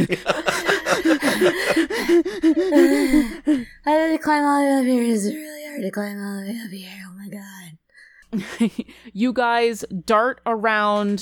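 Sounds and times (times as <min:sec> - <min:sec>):
speech: 0:00.0 - 0:00.4, 0:01.4 - 0:11.2
laughter: 0:00.0 - 0:03.6, 0:08.3 - 0:09.0
voice imitating heavy rapid panting: 0:00.4 - 0:04.0.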